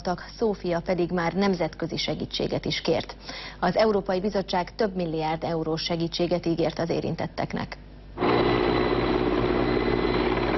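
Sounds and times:
speech: 0.0 - 8.3
firefighting helicopters flying over a forest fire in central Turkey: 8.2 - 10.5.

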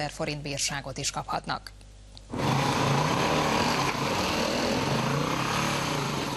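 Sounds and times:
speech: 0.0 - 2.5
off-road motorcycle engine roaring in a protected forest: 2.3 - 6.3.

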